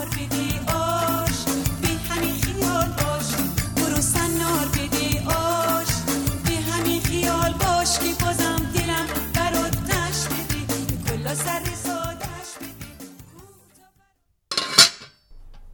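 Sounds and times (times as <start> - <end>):
music: 0.0 - 14.0
metal pot lid clanking and scraping as it is lifted off a pot of ash: 14.5 - 15.7.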